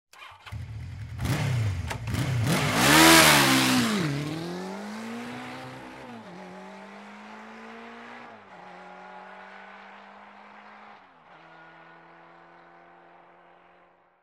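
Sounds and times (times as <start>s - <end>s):
motorcycle starting: 0.1s - 6.0s
motorcycle idling: 0.2s - 5.0s
motorcycle driving off quickly: 0.2s - 14.0s.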